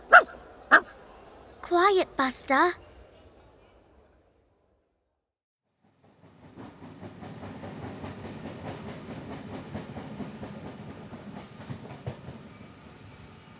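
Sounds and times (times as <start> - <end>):
speech: 1.7 - 2.8
train arriving with wheels clattering on rails: 5.8 - 13.5.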